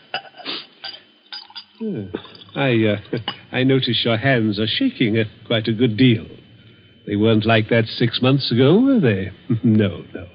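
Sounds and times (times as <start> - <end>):
glassware clinking: 0.0 - 3.5
brandy pouring into a glass: 1.3 - 3.4
speech: 1.8 - 6.4, 7.1 - 10.3.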